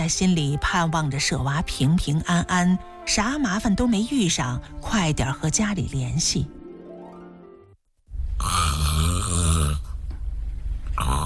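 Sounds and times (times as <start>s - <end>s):
speech: 0.0s - 6.6s
loud heavy snoring of a sleeping woman: 8.4s - 10.0s, 11.0s - 11.2s.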